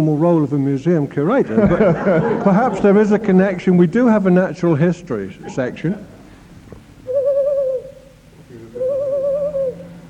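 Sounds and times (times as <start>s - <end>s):
speech: 0.0s - 6.1s
laughter: 1.4s - 3.7s
person imitating owl hoots: 7.0s - 10.0s.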